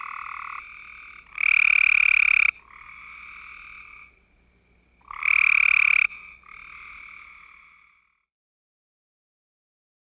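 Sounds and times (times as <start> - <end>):
Cope's gray treefrog giving a loud rapid buzzing trill: 0.0 - 2.8, 5.1 - 7.6.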